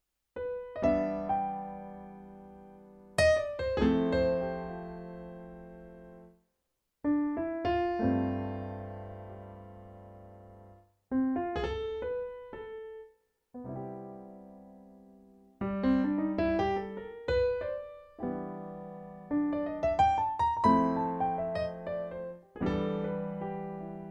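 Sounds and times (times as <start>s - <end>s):
Roland BK3 piano: 0.4s - 6.4s, 7.0s - 24.0s.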